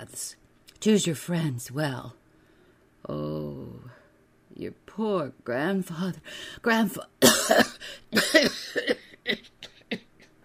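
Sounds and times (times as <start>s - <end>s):
speech: 0.1s - 2.2s, 3.0s - 3.9s, 4.6s - 9.6s
voice acting out a man's coughing fit: 7.2s - 9.4s.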